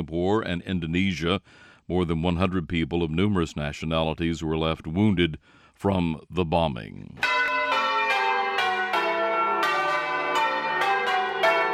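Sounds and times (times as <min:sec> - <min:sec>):
speech: 0:00.0 - 0:07.9
church bells pealing in New Orleans Louisiana: 0:07.2 - 0:11.7.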